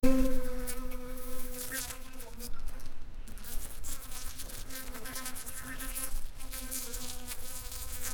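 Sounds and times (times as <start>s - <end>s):
background hiss: 0.0s - 8.1s
bumblebee buzzing as a low continuous drone: 0.0s - 8.1s.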